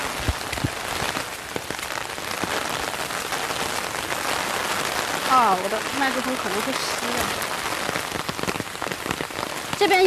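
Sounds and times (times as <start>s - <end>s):
steady rain pattering on hard surfaces beside a hiking trail: 0.0s - 10.0s
speech: 5.4s - 7.5s, 9.8s - 10.0s.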